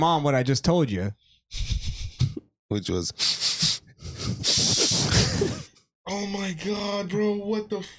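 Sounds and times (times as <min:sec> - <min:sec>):
speech: 0:00.0 - 0:01.8, 0:02.7 - 0:03.5, 0:06.1 - 0:07.9
nasal sniffing: 0:03.2 - 0:05.7.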